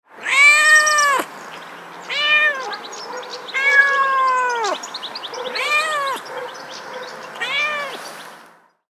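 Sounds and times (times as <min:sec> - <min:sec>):
domestic cat meowing: 0:00.2 - 0:01.3, 0:02.1 - 0:02.8, 0:03.5 - 0:04.8, 0:05.5 - 0:06.3, 0:07.4 - 0:08.0.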